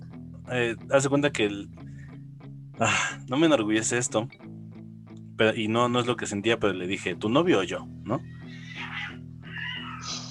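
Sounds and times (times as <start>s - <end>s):
speech: 0.5s - 1.8s, 2.8s - 4.5s, 5.4s - 8.4s
cat meowing: 8.5s - 10.2s.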